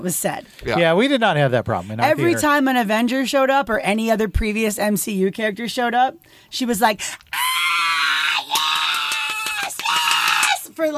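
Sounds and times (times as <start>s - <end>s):
speech: 0.0s - 7.8s, 10.8s - 10.9s
voice imitating a woman screaming in a cinema: 7.3s - 10.7s.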